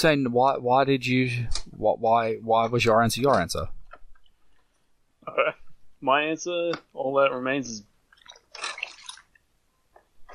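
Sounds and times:
speech: 0.0s - 3.8s, 5.3s - 7.9s
water being poured in a splashy gush: 8.1s - 9.4s.

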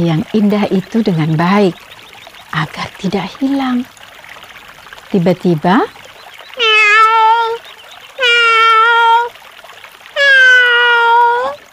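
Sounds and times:
speech: 0.0s - 4.0s, 5.1s - 6.0s
pet cat meowing loudly: 6.6s - 7.6s, 8.2s - 9.3s, 10.2s - 11.6s.

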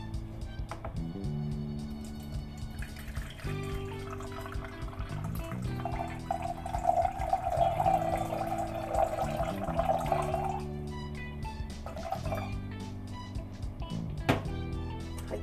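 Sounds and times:
soft music: 0.0s - 15.4s
hot water poured onto tea leaves: 2.1s - 10.6s.

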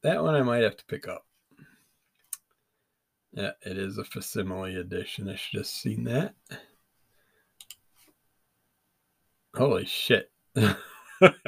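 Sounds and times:
speech: 0.0s - 1.3s, 3.3s - 6.7s, 9.5s - 11.4s
faint computer mouse clicks: 7.6s - 8.1s
laughter: 10.6s - 11.4s.

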